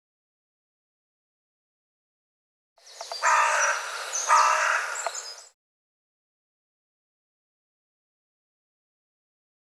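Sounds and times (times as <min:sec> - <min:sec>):
bird giving long rasping calls: 0:02.8 - 0:05.6.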